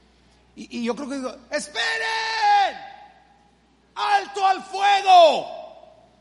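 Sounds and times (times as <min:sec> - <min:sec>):
speech: 0:00.6 - 0:02.9, 0:04.0 - 0:05.6
man imitating a soldier's loud shout: 0:01.5 - 0:03.2, 0:04.0 - 0:06.0.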